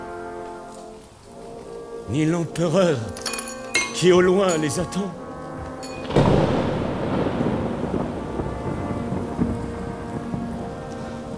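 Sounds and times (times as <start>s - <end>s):
torrential rain pouring in a heavy thunderstorm: 0.0s - 11.3s
speech: 2.1s - 3.3s, 4.0s - 5.2s
sharp thunder crack: 4.2s - 11.3s
low rumbling thunder: 5.1s - 11.3s
roaring wind: 5.1s - 11.3s.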